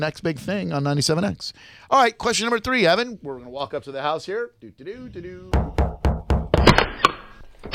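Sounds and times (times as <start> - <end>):
speech: 0.0 - 5.8
knocking on a house's front door: 5.5 - 6.6.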